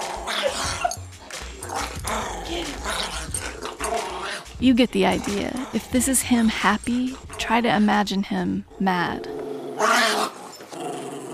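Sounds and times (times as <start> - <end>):
two dogs scuffling while wrestling: 0.0 - 7.5
two dogs growling, snarling, yipping and barking playfully: 0.0 - 7.9, 8.7 - 11.3
speech: 4.6 - 9.3.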